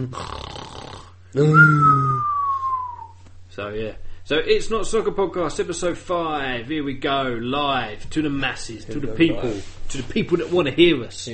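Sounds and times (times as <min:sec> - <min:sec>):
speech: 0:00.0 - 0:00.4, 0:01.3 - 0:02.3, 0:03.6 - 0:11.3
pet dog snoring: 0:00.0 - 0:01.2.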